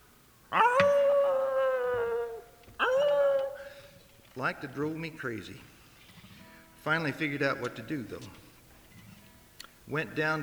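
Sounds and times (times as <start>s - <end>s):
dog howling: 0.5s - 4.2s
speech: 4.4s - 5.7s, 6.8s - 8.4s, 9.9s - 10.4s.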